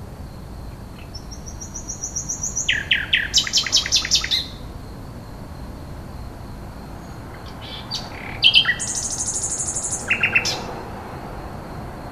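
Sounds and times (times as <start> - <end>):
common nightingale song: 0.6 - 4.8, 6.9 - 11.0.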